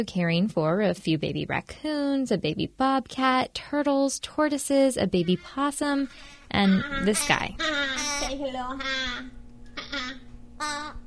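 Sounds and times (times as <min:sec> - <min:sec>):
low steady hum: 0:00.0 - 0:11.0
speech: 0:00.0 - 0:11.0
young crow cawing: 0:05.9 - 0:11.0.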